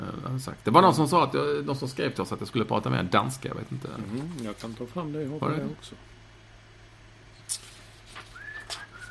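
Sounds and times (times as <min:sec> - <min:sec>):
speech: 0:00.4 - 0:06.1
person whistling soft thin notes: 0:08.3 - 0:09.0.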